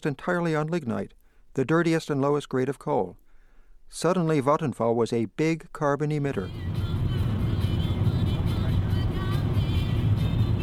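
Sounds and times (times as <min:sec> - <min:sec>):
speech: 0:00.0 - 0:03.2, 0:03.9 - 0:06.9
car driving on the Autobahn south from Berlin: 0:06.4 - 0:10.6.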